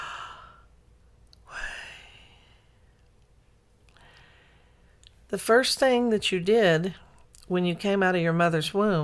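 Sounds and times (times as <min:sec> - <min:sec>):
person breathing in and out: 0:00.0 - 0:00.8, 0:01.4 - 0:03.0, 0:03.9 - 0:05.0
speech: 0:05.3 - 0:09.0.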